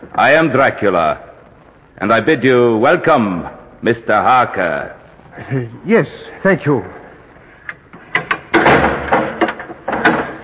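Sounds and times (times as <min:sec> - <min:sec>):
speech: 0:00.0 - 0:01.3, 0:02.0 - 0:07.0
heavy door closing with latches and bolts clunking: 0:08.2 - 0:10.4.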